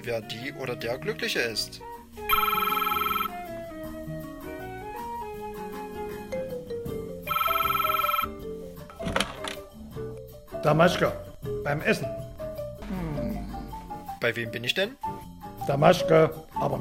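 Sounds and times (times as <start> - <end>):
speech: 0.0 - 2.6, 10.6 - 12.2, 14.2 - 15.1, 15.7 - 16.7
music playing: 0.3 - 16.7
telephone ringing on an outgoing call: 2.3 - 3.4, 7.3 - 8.3.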